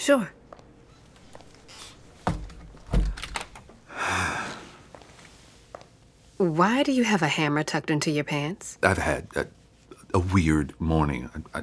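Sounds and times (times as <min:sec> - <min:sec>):
speech: 0:00.0 - 0:00.4, 0:06.4 - 0:11.6
door being shut with dull wooden thuds: 0:02.2 - 0:03.6.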